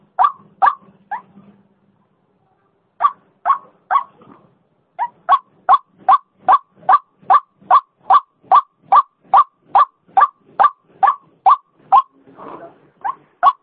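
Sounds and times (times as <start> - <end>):
female white-breasted waterhen call with clipped croaks: 0.1 - 0.8, 5.0 - 12.1, 13.0 - 13.6.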